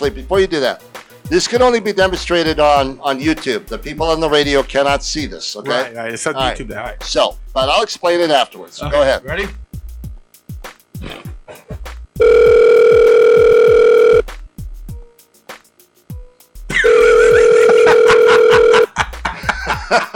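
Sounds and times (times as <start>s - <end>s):
speech: 0.0s - 9.6s, 19.9s - 20.1s
ringback tone from an outgoing phone call: 12.2s - 14.2s, 16.8s - 18.9s
laughter: 16.7s - 20.1s.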